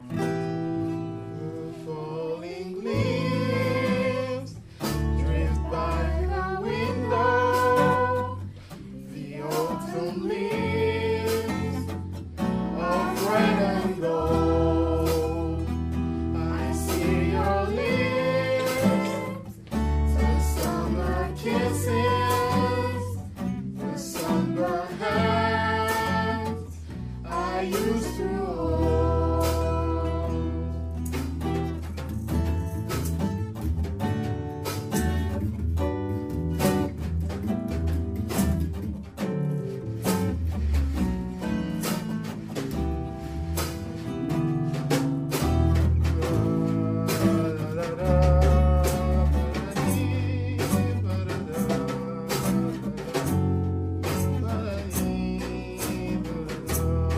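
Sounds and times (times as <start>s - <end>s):
acoustic music piece: 0.0s - 57.1s.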